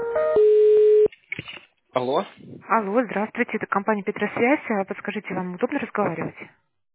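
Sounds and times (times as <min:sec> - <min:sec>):
electronic telephone on-hold tones during call transfer: 0:00.2 - 0:01.1
speech: 0:02.1 - 0:06.6.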